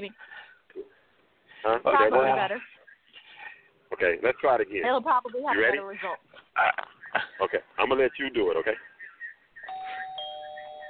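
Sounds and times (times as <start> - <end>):
speech: 0.0 - 0.4, 1.6 - 2.7, 4.0 - 8.9
doorbell ringing with two chime tones: 9.7 - 10.8.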